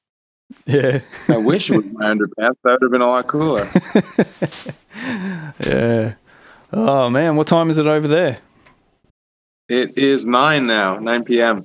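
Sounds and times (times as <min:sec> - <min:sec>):
laughter: 0:00.5 - 0:06.2
speech: 0:00.6 - 0:08.5, 0:09.7 - 0:11.6
crickets chirping at night: 0:03.0 - 0:05.2, 0:09.7 - 0:11.6.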